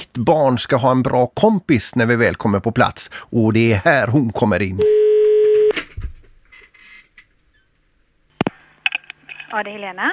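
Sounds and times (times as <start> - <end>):
speech: 0.2 - 5.1, 9.5 - 10.1
outgoing-call ringing tone from a phone call: 4.8 - 5.7.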